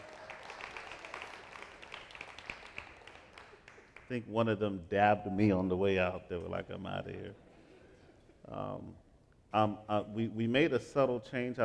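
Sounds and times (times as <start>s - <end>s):
crowd applauding: 0.0s - 4.2s
speech: 4.1s - 7.4s, 8.5s - 11.6s.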